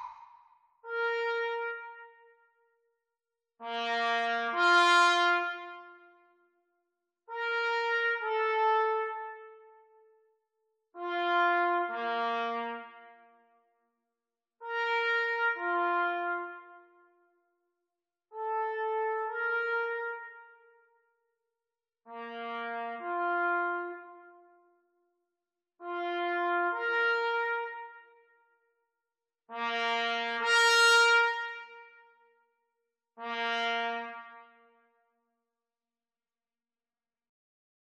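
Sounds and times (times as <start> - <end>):
trumpet duet practice: 0.9 - 2.3, 3.6 - 6.2, 7.3 - 9.7, 11.0 - 13.1, 14.6 - 17.0, 18.4 - 20.7, 22.1 - 24.5, 25.8 - 28.2, 29.5 - 32.0, 33.2 - 34.7.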